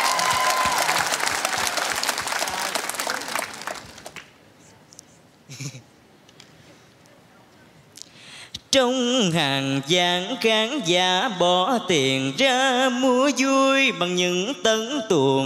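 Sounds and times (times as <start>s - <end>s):
applause from a sizeable audience: 0.0s - 4.3s
speech: 5.6s - 5.9s, 8.7s - 15.4s.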